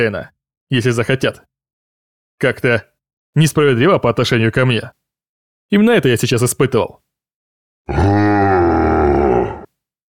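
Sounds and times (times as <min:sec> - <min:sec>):
speech: 0:00.0 - 0:01.5, 0:02.4 - 0:05.0, 0:05.7 - 0:07.0, 0:07.8 - 0:08.5
huge monster roaring: 0:07.9 - 0:09.7.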